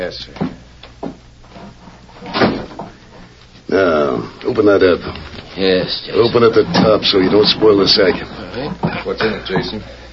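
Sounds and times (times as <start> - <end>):
speech: 0.0 - 0.5, 4.6 - 10.0
door shutting with a solid thud: 2.2 - 3.0.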